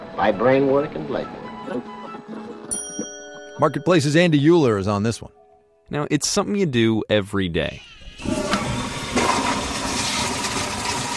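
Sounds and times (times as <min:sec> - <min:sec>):
speech: 0:00.2 - 0:02.8, 0:03.6 - 0:08.3
toilet flushing: 0:08.0 - 0:11.1.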